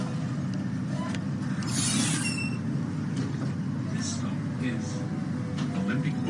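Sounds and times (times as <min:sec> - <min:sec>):
tram rolling along its rails: 0:00.0 - 0:06.2
high metallic tram wheel squeals: 0:01.6 - 0:02.9.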